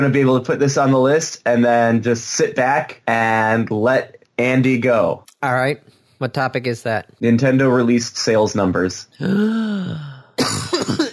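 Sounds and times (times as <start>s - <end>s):
speech: 0.0s - 10.1s
person coughing: 10.4s - 11.1s.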